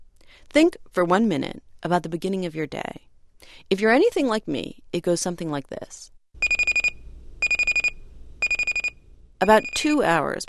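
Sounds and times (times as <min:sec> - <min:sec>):
speech: 0:00.5 - 0:06.2, 0:09.4 - 0:10.4
alarm clock going off with rapid high electronic beeps: 0:06.4 - 0:10.4.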